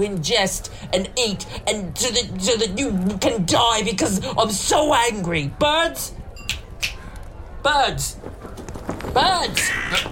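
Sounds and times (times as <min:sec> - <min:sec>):
speech: 0:00.0 - 0:06.2, 0:07.6 - 0:08.4, 0:09.2 - 0:10.1
rustling and clatter: 0:08.0 - 0:10.1
harsh bird squawks bending downward in pitch: 0:09.6 - 0:10.1.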